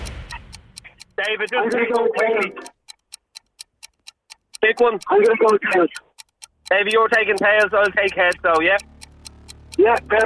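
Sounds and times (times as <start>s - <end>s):
game show countdown clock ticking: 0.0s - 10.2s
indistinct voices of contestants: 0.9s - 2.9s, 4.6s - 10.2s
speech: 1.2s - 2.7s, 4.6s - 6.1s, 6.7s - 8.9s, 9.8s - 10.2s.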